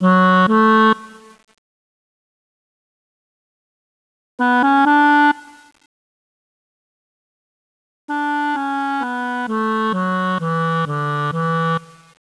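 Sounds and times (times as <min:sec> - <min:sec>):
clarinet playing: 0:00.0 - 0:01.3, 0:04.4 - 0:05.7, 0:08.1 - 0:11.8.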